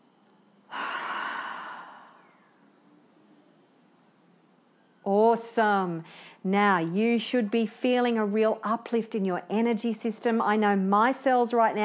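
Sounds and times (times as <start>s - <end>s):
faint hiss: 0.0s - 11.8s
deep breath in and out during a guided breathing exercise: 0.7s - 2.6s, 6.0s - 6.4s
speech: 5.1s - 11.8s.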